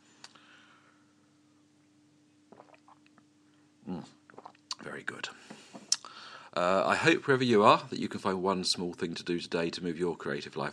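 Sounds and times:
person slurping tea: 0:02.5 - 0:03.0, 0:03.9 - 0:04.8
soft clicks and mouth sounds while sipping tea: 0:03.9 - 0:04.9, 0:05.9 - 0:06.1
speech: 0:05.0 - 0:05.6, 0:06.6 - 0:10.7.

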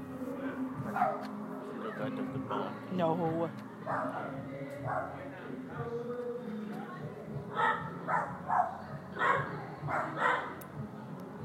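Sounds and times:
people talking faintly: 0:00.0 - 0:11.4
two neighbouring dogs barking at each other: 0:00.9 - 0:01.3, 0:03.9 - 0:05.2, 0:07.5 - 0:10.6
speech: 0:02.1 - 0:06.3.

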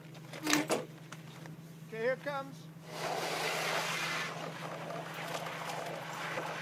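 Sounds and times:
low mechanical hum: 0:00.0 - 0:06.6
speech: 0:02.0 - 0:03.4, 0:04.5 - 0:05.4
hydrant water rushing into a truck tank: 0:02.8 - 0:06.6.

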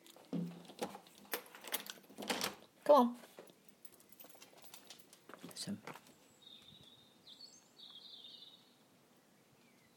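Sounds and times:
rustling and shuffling outdoors: 0:00.0 - 0:06.8
speech: 0:02.9 - 0:03.3, 0:05.6 - 0:06.0
distant blackbird singing: 0:06.1 - 0:09.9.

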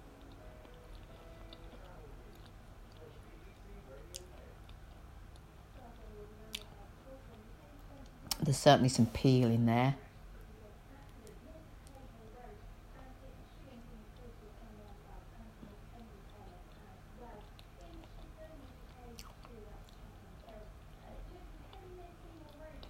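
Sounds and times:
person chewing soft crumbly pastry: 0:00.2 - 0:05.5, 0:17.4 - 0:20.6
speech: 0:08.5 - 0:10.0.

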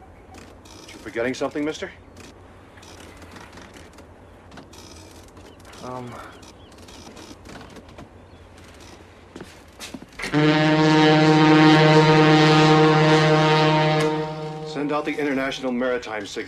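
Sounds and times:
ship's large engines rumbling with a deep harmonic drone: 0:00.0 - 0:16.4
quiet clatter: 0:00.2 - 0:10.4
speech: 0:01.0 - 0:02.0, 0:05.8 - 0:06.4, 0:10.3 - 0:11.2, 0:15.1 - 0:16.4.

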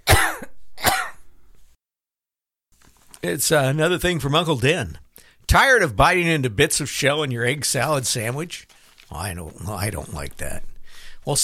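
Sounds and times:
dog coughing with harsh raspy coughs: 0:00.0 - 0:01.2
speech: 0:03.2 - 0:11.4.

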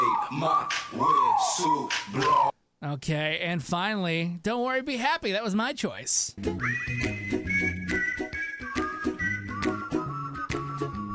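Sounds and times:
backing vocals: 0:00.0 - 0:02.5
speech: 0:00.3 - 0:07.4
played song with bass, percussion and backing vocals: 0:06.4 - 0:11.1
whistled melody on top of a played song: 0:06.4 - 0:11.1.

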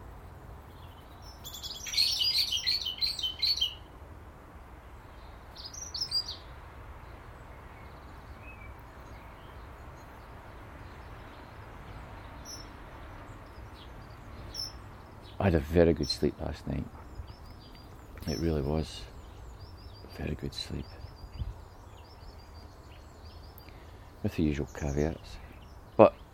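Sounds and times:
faint steady hiss: 0:00.0 - 0:26.3
resident flock of birds chattering inside a thick hedge: 0:01.2 - 0:03.8, 0:08.6 - 0:26.3
speech: 0:15.4 - 0:17.0, 0:18.3 - 0:19.1, 0:20.2 - 0:21.0, 0:24.3 - 0:25.4.

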